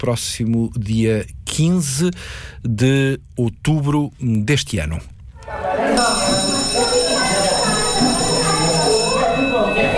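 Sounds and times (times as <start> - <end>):
speech: 0.0 - 7.0
hubbub of many voices chattering: 5.4 - 9.9
electric school bell ringing: 6.0 - 9.9.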